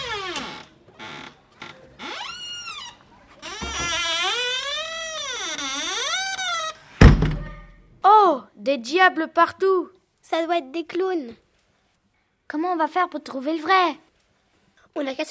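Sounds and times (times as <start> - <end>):
door unlatching: 0.0 - 7.8
short sharp knock or latch sound: 7.0 - 7.7
speech: 8.6 - 11.4, 12.5 - 14.0, 14.9 - 15.3.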